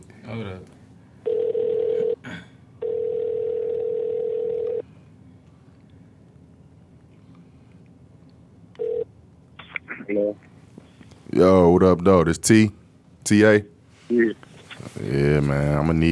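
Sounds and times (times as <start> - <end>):
low hum: 0.0 - 16.1
speech: 0.3 - 1.4, 11.4 - 14.3, 15.0 - 16.1
telephone dialing tones: 1.3 - 2.2, 2.8 - 4.8, 8.8 - 9.1.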